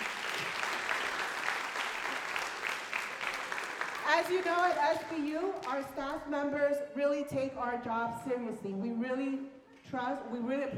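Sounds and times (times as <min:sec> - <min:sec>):
audience applause: 0:00.0 - 0:05.7
speech: 0:04.2 - 0:10.7.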